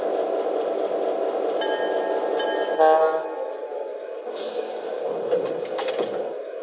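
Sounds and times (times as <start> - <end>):
passenger train rumbling at a station: 0.0 - 6.6
tonal horn-like blast of passenger train: 2.7 - 3.5
faint clanks and hisses of passenger train: 4.3 - 6.2.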